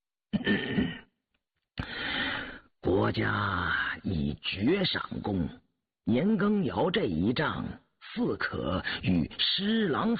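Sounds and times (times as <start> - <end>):
light cough: 0.3 - 1.1
speech: 3.1 - 10.1.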